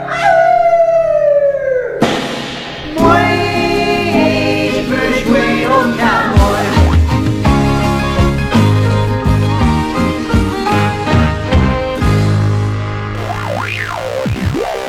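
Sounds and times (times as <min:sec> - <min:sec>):
person in a cell howling at the moon: 0:00.0 - 0:02.0
dense sustained music: 0:02.0 - 0:14.7.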